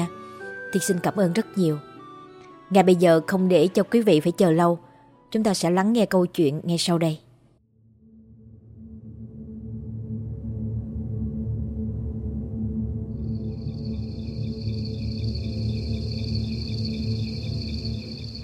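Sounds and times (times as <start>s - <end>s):
speech: 0.7s - 1.9s, 2.7s - 7.2s
steady low rumble: 7.8s - 18.4s
cicadas chirping on a drizzly summer afternoon in Saigon: 13.2s - 18.4s.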